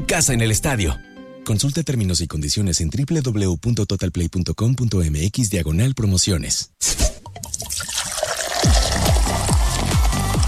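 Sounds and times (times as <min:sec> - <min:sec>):
speech: 0:00.1 - 0:07.1
soda bottle being uncapped: 0:06.8 - 0:09.4
soda pouring with a fizzy glugging rhythm: 0:07.2 - 0:10.4.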